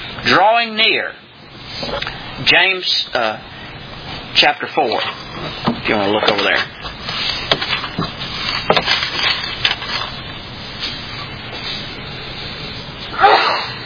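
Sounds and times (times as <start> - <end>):
steady hiss: 0.0 - 13.8
speech: 0.2 - 1.2, 1.8 - 3.5, 4.4 - 7.4
single sharp sneeze: 13.1 - 13.8.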